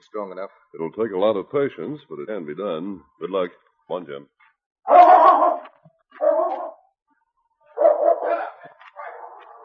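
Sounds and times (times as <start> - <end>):
speech: 0.1 - 5.1
big strong dog barking: 4.9 - 6.8, 7.7 - 9.6.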